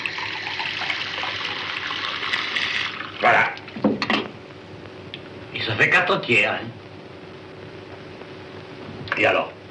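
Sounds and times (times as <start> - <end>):
water poured into a glass while a drink is mixed: 0.0 - 3.2
speech: 3.2 - 3.6, 5.8 - 6.8, 9.2 - 9.5.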